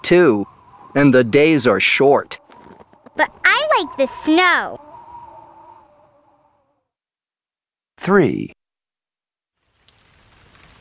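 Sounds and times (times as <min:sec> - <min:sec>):
steady rain pattering on a surface: 0:00.0 - 0:05.5, 0:09.6 - 0:10.7
speech: 0:00.1 - 0:02.4, 0:03.2 - 0:04.8, 0:08.0 - 0:08.6.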